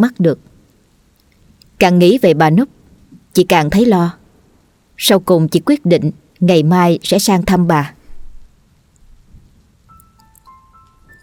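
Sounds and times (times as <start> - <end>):
speech: 0.0 - 0.5, 1.8 - 2.8, 3.4 - 4.2, 5.0 - 8.0
night rain falling over a village: 0.0 - 11.2
thin high tones: 9.9 - 11.2.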